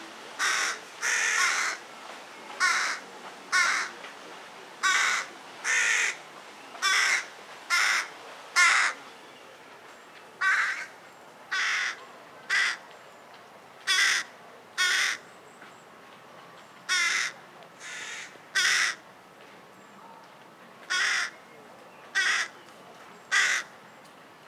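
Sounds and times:
carrion crow Corvus corone cawing: 0.4s - 1.8s, 2.6s - 3.9s, 4.8s - 6.2s, 6.8s - 9.0s, 10.4s - 10.9s, 11.5s - 12.8s, 13.9s - 15.2s, 16.9s - 19.0s, 20.9s - 21.4s, 22.2s - 22.6s, 23.3s - 23.7s.

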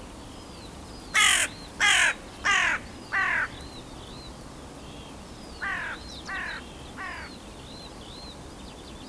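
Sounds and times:
carrion crow Corvus corone harsh grating caws: 1.2s - 3.7s, 5.6s - 7.3s.

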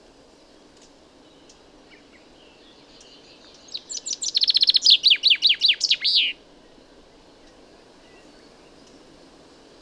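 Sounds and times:
Common chaffinch song: 3.0s - 6.4s.

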